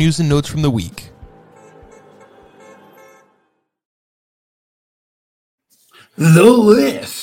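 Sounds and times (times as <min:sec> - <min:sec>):
speech: 0:00.0 - 0:01.1, 0:06.2 - 0:07.2
dense traffic noise: 0:00.0 - 0:03.7
car horns honking: 0:00.4 - 0:03.8.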